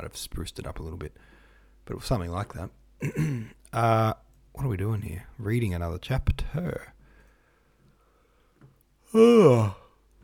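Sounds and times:
speech: 0.0s - 7.0s, 9.1s - 9.8s
drawn-out voiced yawn: 9.1s - 10.0s.

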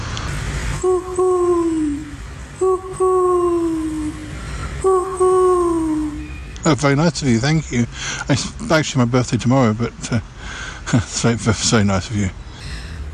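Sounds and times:
low rumbling noise: 0.0s - 13.1s
pigeon cooing in a small park surrounded by houses: 0.8s - 6.3s
speech: 6.7s - 10.3s, 10.9s - 12.4s.

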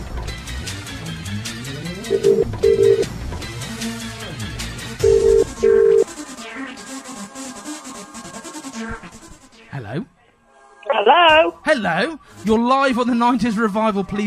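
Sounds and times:
music: 0.0s - 14.2s
speech: 2.1s - 2.5s, 11.7s - 14.2s
telephone ringback tone of an outgoing call: 2.1s - 3.1s, 5.0s - 6.0s.

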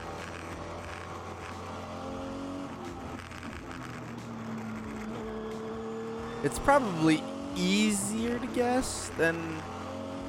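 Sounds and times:
turbocharged hill climb race car engine roaring and revving: 0.0s - 10.2s
speech: 6.4s - 9.8s.

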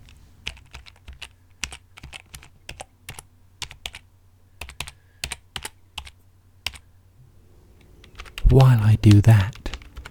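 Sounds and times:
low hum: 0.0s - 10.0s
typing on a computer keyboard: 0.4s - 6.9s, 8.0s - 8.5s, 9.5s - 10.0s
speech: 8.5s - 9.6s.

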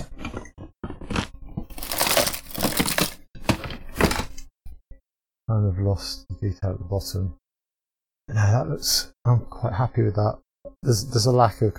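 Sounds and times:
scissors cutting a plastic bag: 1.2s - 3.2s
speech: 5.5s - 7.4s, 8.3s - 11.7s.

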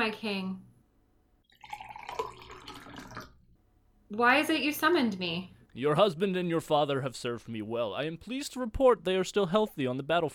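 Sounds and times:
speech: 0.0s - 0.7s, 4.1s - 10.3s
wine pouring into a glass: 1.4s - 3.4s.

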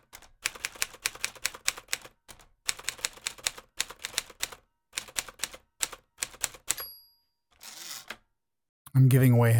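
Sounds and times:
mechanical typewriter keys clacking: 0.0s - 6.9s
typewriter bell ding: 6.6s - 7.4s
speech: 9.0s - 9.5s.

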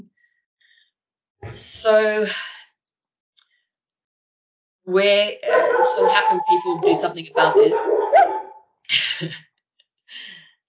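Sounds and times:
speech: 1.4s - 2.6s, 4.9s - 9.5s
dogs barking: 5.4s - 8.6s
laughter: 5.6s - 8.2s.

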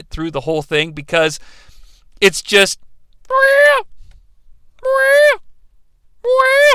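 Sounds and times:
speech: 0.2s - 3.9s, 4.8s - 5.4s
person imitating a shrieking bird: 3.3s - 3.9s, 4.8s - 5.4s, 6.2s - 6.7s.

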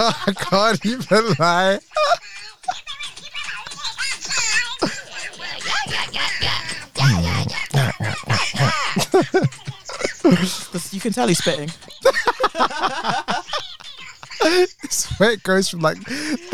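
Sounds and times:
speech: 0.0s - 2.8s, 10.2s - 13.4s, 14.4s - 16.5s
several people chattering: 0.0s - 16.5s
several people laughing: 0.0s - 16.5s
voice imitating a duck's quack: 1.1s - 11.8s.

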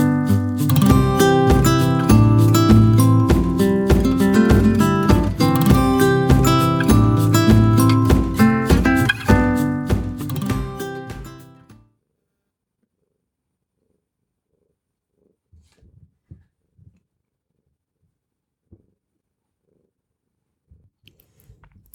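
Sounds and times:
music: 0.0s - 11.8s
cat purring: 13.8s - 20.9s.

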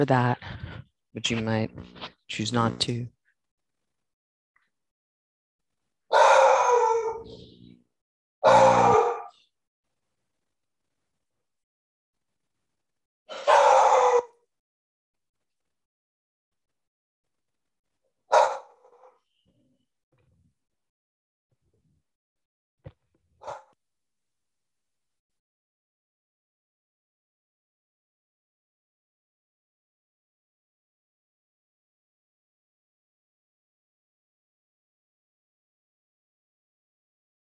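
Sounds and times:
speech: 0.0s - 0.6s, 1.2s - 3.2s
several dogs barking at the door: 6.1s - 7.4s, 13.3s - 14.4s, 18.3s - 19.1s, 23.4s - 23.8s.

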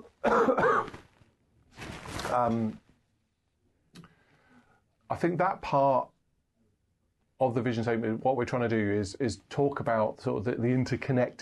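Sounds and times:
person coughing raspily: 0.2s - 1.0s
speech: 2.3s - 2.8s, 5.1s - 6.1s, 7.4s - 11.4s.

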